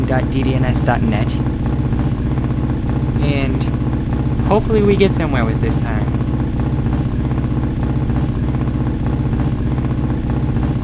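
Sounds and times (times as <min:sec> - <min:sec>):
video game motorcycle engine drone looping: 0:00.0 - 0:10.8
speech: 0:00.1 - 0:01.6, 0:04.5 - 0:06.1.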